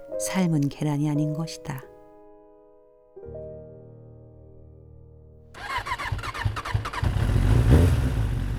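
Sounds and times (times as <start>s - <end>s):
speech: 0.2s - 1.9s
motorcycle engine cranking, starting and revving: 5.6s - 8.5s.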